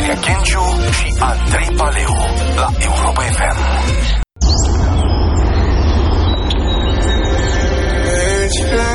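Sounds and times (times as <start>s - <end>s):
speech: 0.1s - 4.2s
migratory birds chirping and singing: 4.0s - 8.8s.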